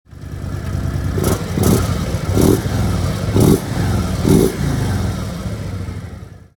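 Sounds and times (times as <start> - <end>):
engine exhaust in dynamic mode: 0.1 - 6.5.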